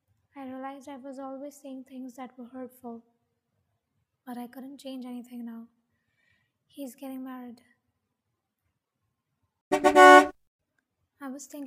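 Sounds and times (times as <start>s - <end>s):
speech: 0.7s - 3.2s, 4.3s - 5.8s, 6.7s - 7.7s, 11.2s - 11.6s
car horn honking: 9.7s - 10.3s.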